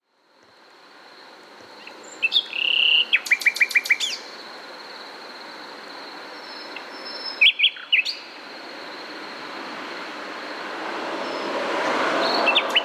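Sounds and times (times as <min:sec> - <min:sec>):
background noise: 0:00.0 - 0:12.8
common nightingale Luscinia megarhynchos song: 0:00.6 - 0:12.8.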